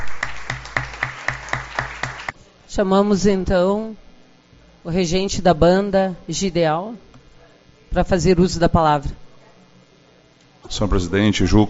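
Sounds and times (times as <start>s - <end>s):
audience clapping in steady unison: 0.0s - 2.4s
low hum: 0.0s - 11.6s
speech: 2.7s - 4.0s, 4.8s - 7.1s, 7.9s - 9.2s, 10.7s - 11.6s.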